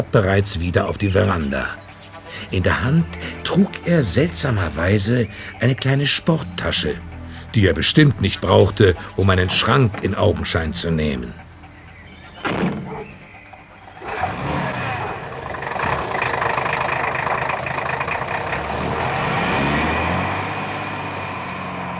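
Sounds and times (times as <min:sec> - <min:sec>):
speech: 0:00.0 - 0:11.4
car engine starting and rumbling as the car pulls away: 0:00.0 - 0:21.9
car door thudding shut: 0:12.4 - 0:13.3.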